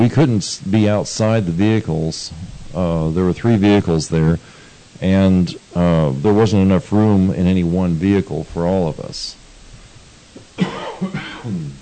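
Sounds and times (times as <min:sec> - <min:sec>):
speech: 0:00.0 - 0:09.4
person coughing from dust in the throat: 0:10.6 - 0:11.8
throat clearing from dust caught in the throat: 0:10.6 - 0:11.8.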